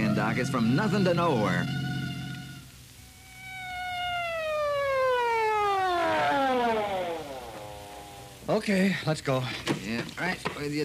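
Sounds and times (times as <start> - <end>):
siren wailing: 0.0 - 8.5
speech: 0.2 - 1.8, 8.5 - 10.8.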